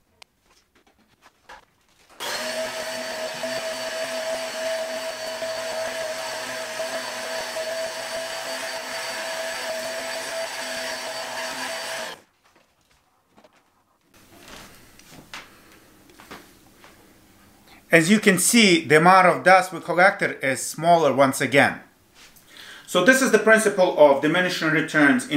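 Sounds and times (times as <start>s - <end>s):
vacuum cleaner running: 2.2s - 12.2s
speech: 17.9s - 21.9s, 22.9s - 25.3s.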